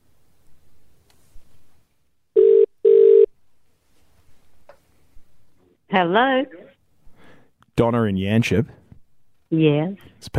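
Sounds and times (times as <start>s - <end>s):
buzzing telephone ring tones of a call being placed: 2.4s - 3.3s
speech: 5.9s - 6.6s, 7.8s - 8.8s, 9.5s - 10.3s.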